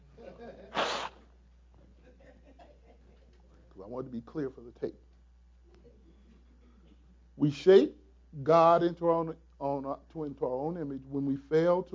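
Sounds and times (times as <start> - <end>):
person blowing their nose: 0.7 - 1.3
speech: 3.8 - 5.1, 7.4 - 11.9.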